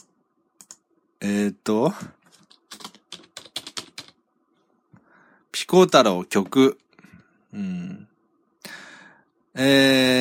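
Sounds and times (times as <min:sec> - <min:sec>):
typing on a computer keyboard: 0:00.6 - 0:00.8, 0:02.3 - 0:04.2
speech: 0:01.2 - 0:02.2, 0:05.7 - 0:06.8, 0:07.5 - 0:08.1, 0:09.6 - 0:10.2.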